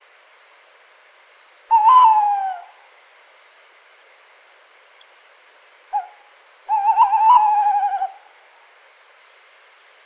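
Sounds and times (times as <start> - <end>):
tawny owl Strix aluco hooting: 1.7 - 2.8, 5.9 - 8.3.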